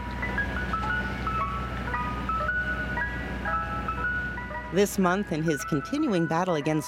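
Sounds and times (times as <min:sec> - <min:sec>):
ice cream truck jingle on city streets: 0:00.0 - 0:06.8
speech: 0:04.7 - 0:06.8.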